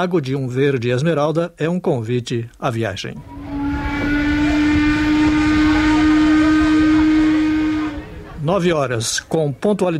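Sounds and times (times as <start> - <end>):
speech: 0.0 - 3.5, 8.4 - 9.9
low rumbling: 3.1 - 9.3
sustained whistle-like drone: 3.2 - 8.6
steamboat engines starting up on a lake: 3.2 - 9.7.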